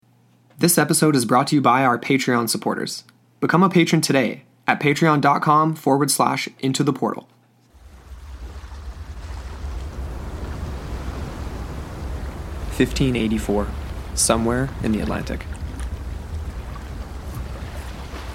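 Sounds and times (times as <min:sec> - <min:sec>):
speech: 0:00.6 - 0:07.4, 0:12.8 - 0:15.5
breezy wind at sea: 0:07.7 - 0:18.3
small waves lapping against a ship's hull at sea: 0:07.7 - 0:18.3
soft splashes: 0:07.8 - 0:18.3.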